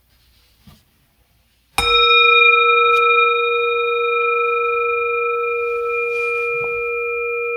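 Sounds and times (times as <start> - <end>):
bell struck to start: 1.8 - 7.5.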